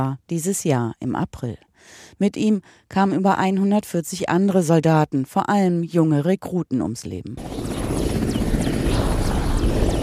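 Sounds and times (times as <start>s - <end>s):
speech: 0.0s - 7.7s
military helicopter flying soldiers into a camp in Afghanistan: 7.4s - 10.0s.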